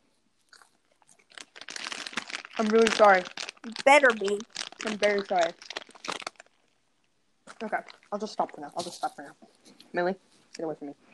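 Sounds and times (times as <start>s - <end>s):
crunchy chewing of popcorn: 0.4s - 6.8s, 7.5s - 9.2s
speech: 2.6s - 5.7s, 7.6s - 11.1s.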